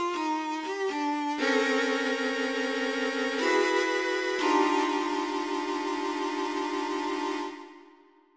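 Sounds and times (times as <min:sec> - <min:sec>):
tone row: 0:00.2 - 0:08.0.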